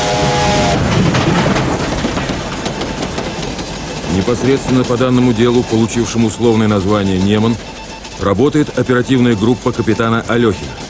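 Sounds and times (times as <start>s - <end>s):
train with wagons carrying military equipment rushing past: 0.0s - 10.8s
speech: 4.2s - 10.8s.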